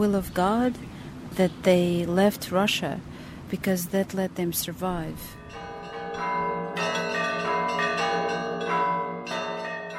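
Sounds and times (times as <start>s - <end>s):
speech: 0.0s - 5.6s
church bells ringing in a layered peal: 5.3s - 9.9s.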